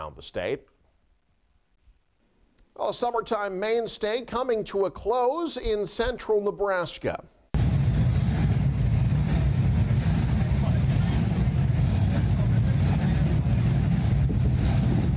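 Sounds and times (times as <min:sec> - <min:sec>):
speech: 0:00.0 - 0:00.7, 0:02.8 - 0:07.4
several classic hot rod engines idling and revving: 0:07.6 - 0:15.1.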